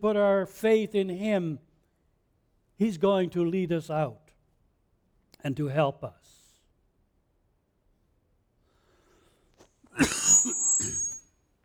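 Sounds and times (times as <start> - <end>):
speech: 0.0 - 1.7, 2.8 - 4.2, 5.4 - 6.4
person clearing throat: 10.0 - 11.0
person coughing: 10.0 - 11.0.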